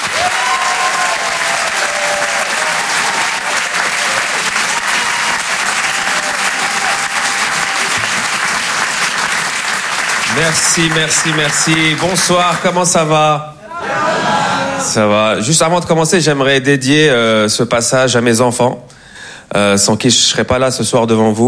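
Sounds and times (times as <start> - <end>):
audience clapping at a comedy club: 0.0 - 13.1
speech: 10.4 - 13.5, 14.8 - 21.4.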